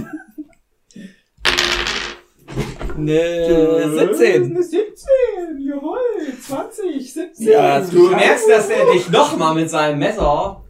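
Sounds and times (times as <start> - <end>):
laughter: 0.0 - 0.6, 7.7 - 9.6
dice rolled for a game clattering across a hard surface: 1.4 - 2.3
speech: 3.0 - 10.6.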